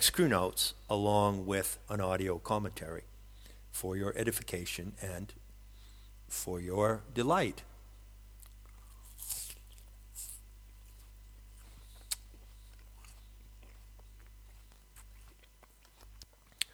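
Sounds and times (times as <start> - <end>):
speech: 0.0 - 3.1, 3.8 - 5.4, 6.3 - 7.7
low steady hum: 0.0 - 16.7
crunchy bites into an apple: 8.3 - 16.7
wet chewing of an apple: 8.4 - 16.7.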